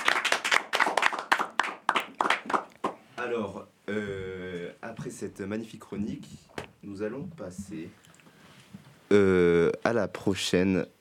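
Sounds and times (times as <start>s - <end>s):
audience applauding: 0.0s - 3.0s
speech: 3.2s - 8.0s, 9.1s - 11.0s.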